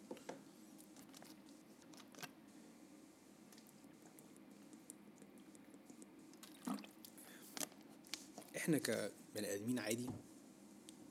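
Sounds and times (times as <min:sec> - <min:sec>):
low steady hum: 0:00.0 - 0:11.0
person drinking water with sips and swallows: 0:00.8 - 0:02.3, 0:03.6 - 0:07.7
speech: 0:08.7 - 0:10.3.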